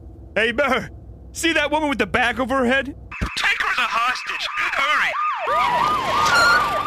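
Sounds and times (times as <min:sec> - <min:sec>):
speech: 0:00.4 - 0:03.0, 0:03.8 - 0:06.8
police car siren wailing in up-and-down sweeps: 0:03.1 - 0:06.8.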